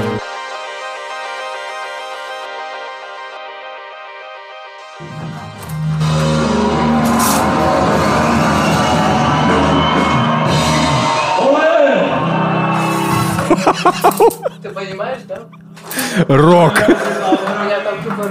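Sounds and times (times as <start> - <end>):
graduation crowd roaring and shouting outdoors: 5.0 - 14.3
whoops and cheers from a graduation crowd: 6.1 - 13.6
laughter: 12.8 - 18.2
speech: 13.6 - 18.2.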